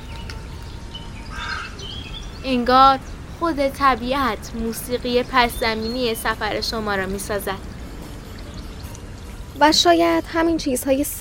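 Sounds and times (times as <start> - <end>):
birds calling in open mountain country: 0.0 - 11.0
mountain wind: 0.0 - 11.1
speech: 2.4 - 7.7, 9.6 - 11.1
springs and running water in mountain country: 3.1 - 11.1.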